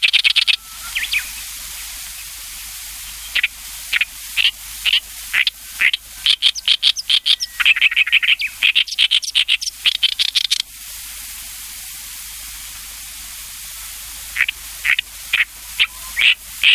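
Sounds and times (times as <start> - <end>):
Oriental reed warbler giving harsh notes and grating chattering syllables: 0.0 - 10.6, 14.4 - 16.7.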